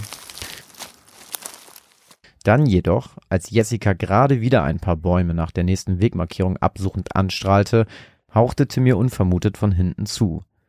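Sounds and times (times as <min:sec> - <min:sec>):
boots crunching through dry leaves and twigs: 0:00.0 - 0:02.2
speech: 0:02.4 - 0:10.5.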